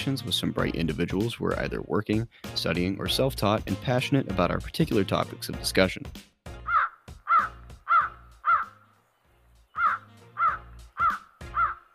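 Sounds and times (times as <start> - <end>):
speech: 0.0 - 6.3
crow cawing: 6.6 - 8.9, 9.8 - 11.9.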